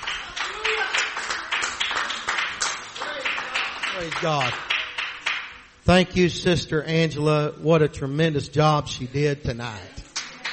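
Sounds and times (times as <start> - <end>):
crowd clapping during a worship service: 0.0 - 5.7, 10.1 - 10.5
speech: 4.0 - 4.7, 5.9 - 10.0.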